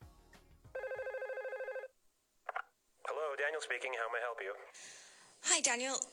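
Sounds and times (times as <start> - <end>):
telephone ringing in an electronic trill: 0.8 - 2.0
speech: 3.5 - 6.1.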